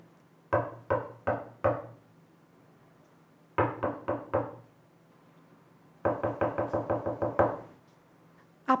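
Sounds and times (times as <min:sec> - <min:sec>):
knocking on a door: 0:00.6 - 0:02.0, 0:03.6 - 0:04.6, 0:06.1 - 0:07.7.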